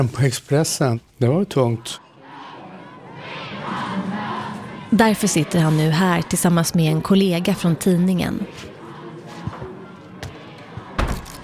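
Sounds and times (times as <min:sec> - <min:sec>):
speech: 0:00.0 - 0:02.0, 0:04.9 - 0:08.7
busy room murmur of voices: 0:01.2 - 0:11.4
doors being thrown open with sharp heavy thuds: 0:10.8 - 0:11.4.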